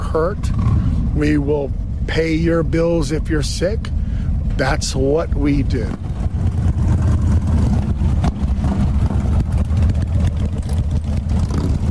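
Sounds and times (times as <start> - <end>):
car engine roaring as the car drives off: 0.0 - 11.8
speech: 0.1 - 6.2.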